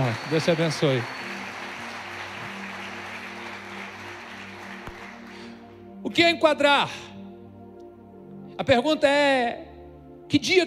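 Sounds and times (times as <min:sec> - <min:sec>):
audience applause in praise of the Lord: 0:00.0 - 0:05.5
speech: 0:00.1 - 0:01.2, 0:06.2 - 0:07.1, 0:08.6 - 0:09.7, 0:10.3 - 0:10.6.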